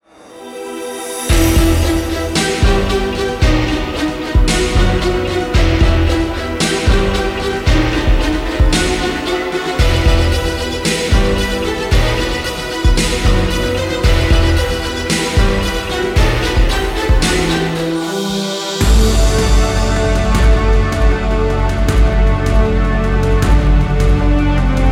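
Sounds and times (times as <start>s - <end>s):
cinematic music: 0.1s - 24.9s.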